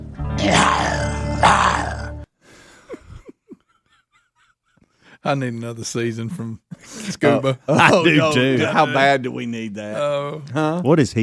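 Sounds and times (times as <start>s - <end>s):
person growling imitating a lion: 0.4s - 2.2s
person grunting: 0.4s - 2.2s
speech: 5.3s - 11.2s.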